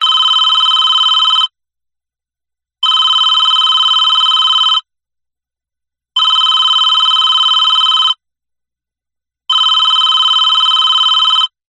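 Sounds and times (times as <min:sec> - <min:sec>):
telephone ringing: 0:00.0 - 0:01.5, 0:02.8 - 0:04.9, 0:06.2 - 0:08.2, 0:09.5 - 0:11.6.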